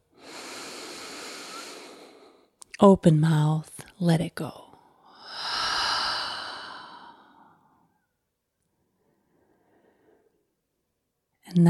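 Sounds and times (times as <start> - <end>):
deep breath in during a guided relaxation: 0.1 - 2.5, 5.1 - 7.8, 9.0 - 10.5
speech: 2.8 - 4.6.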